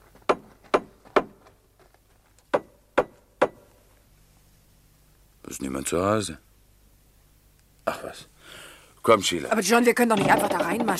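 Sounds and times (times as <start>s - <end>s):
speech: 5.5s - 6.5s, 8.0s - 10.9s
knocking on an open house front door: 10.2s - 10.9s.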